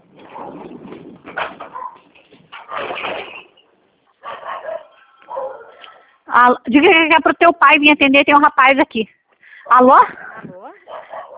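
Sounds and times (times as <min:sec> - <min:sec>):
dog barking and yipping over a phone line: 0:01.6 - 0:02.9, 0:04.2 - 0:06.0, 0:10.8 - 0:11.3
speech: 0:06.4 - 0:10.2.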